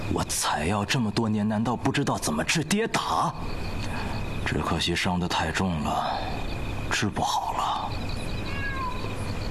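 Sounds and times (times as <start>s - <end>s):
speech: 0.1s - 8.1s
cat meowing: 8.4s - 9.3s.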